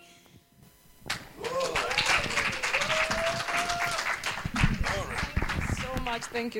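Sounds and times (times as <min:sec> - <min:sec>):
person cheering with a drawn-out call: 0:01.4 - 0:04.1
crowd applauding after a song: 0:01.4 - 0:06.5
speech: 0:06.4 - 0:06.5.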